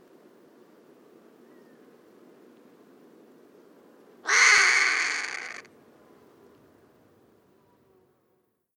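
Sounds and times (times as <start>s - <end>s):
Harris's hawk giving a harsh rasping scream: 4.3s - 5.7s.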